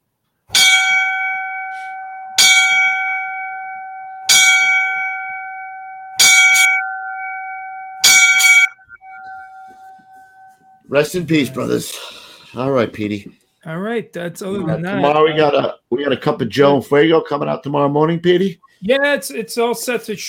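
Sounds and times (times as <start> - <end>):
bell strikes rung for fallen firefighter: 0.5 - 11.6
speech: 10.9 - 20.2.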